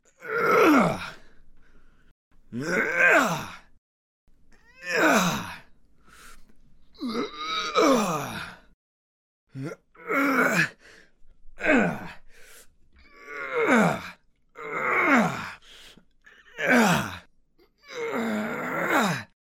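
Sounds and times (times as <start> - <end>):
person straining with effort: 0.2 - 1.3, 2.5 - 3.7, 4.7 - 5.6, 7.0 - 8.6, 11.6 - 12.2, 13.1 - 15.6, 16.4 - 17.3, 17.9 - 19.4.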